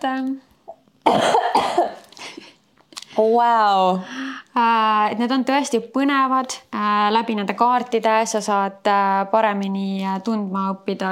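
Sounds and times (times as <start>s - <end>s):
speech: 0.0s - 1.8s, 3.2s - 11.1s
person coughing forcefully: 1.0s - 2.6s.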